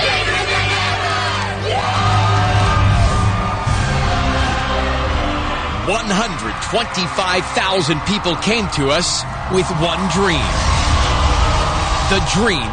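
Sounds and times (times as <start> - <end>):
loud crowd chanting: 0.0 - 12.7
speech: 6.1 - 10.7, 12.1 - 12.7.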